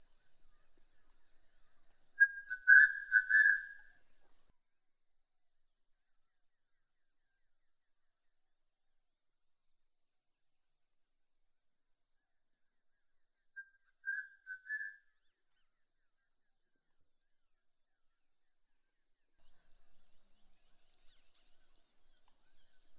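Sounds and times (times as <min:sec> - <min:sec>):
bird song: 0:00.0 - 0:04.0, 0:06.1 - 0:11.4, 0:13.0 - 0:22.9.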